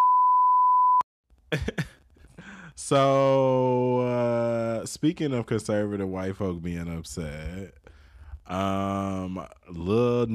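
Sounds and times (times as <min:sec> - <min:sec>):
loud steady single beep tone: 0:00.0 - 0:01.0
speech: 0:02.8 - 0:07.8, 0:08.5 - 0:10.3.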